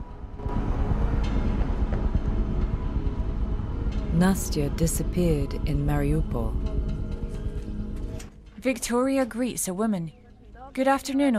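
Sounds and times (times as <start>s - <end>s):
tram rumbling along its track: 0.0s - 8.2s
speech: 4.2s - 7.0s, 8.6s - 10.2s, 10.8s - 11.3s.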